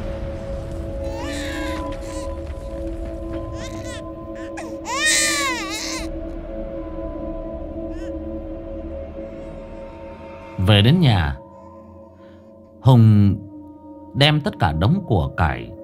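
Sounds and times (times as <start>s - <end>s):
steady low drone: 0.0s - 14.1s
child crying shrilly outside a cemetery: 1.1s - 2.4s, 3.5s - 6.1s
speech: 10.8s - 11.4s, 12.8s - 13.4s, 14.2s - 15.8s.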